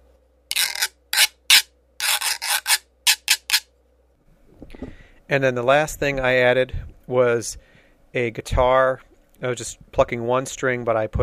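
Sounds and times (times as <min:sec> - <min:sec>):
hollow wooden fish-shaped güiro scraped with a stick: 0:00.5 - 0:03.7
speech: 0:04.8 - 0:11.2.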